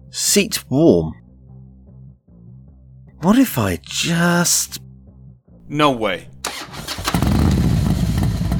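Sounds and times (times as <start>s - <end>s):
speech: 0.1s - 1.2s, 3.2s - 4.8s, 5.7s - 6.8s
motorcycle engine cranking and starting with a loud roar: 6.3s - 8.5s.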